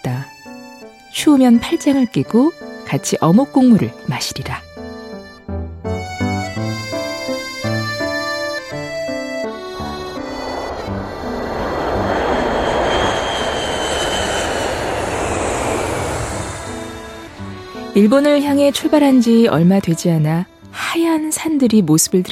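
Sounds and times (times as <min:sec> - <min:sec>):
short melodic passage of music: 0:00.0 - 0:11.2, 0:16.8 - 0:21.3
speech: 0:01.2 - 0:04.7, 0:18.0 - 0:22.3
grey airplane's engine roaring in flight: 0:04.6 - 0:20.7.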